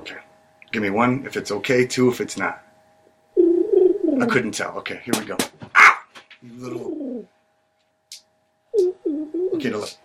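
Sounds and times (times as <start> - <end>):
speech: 0.7 - 2.7, 4.2 - 5.8, 6.4 - 7.4, 9.6 - 10.0
low throaty dove-like bird coo: 3.4 - 4.4, 6.7 - 7.4, 8.7 - 9.9.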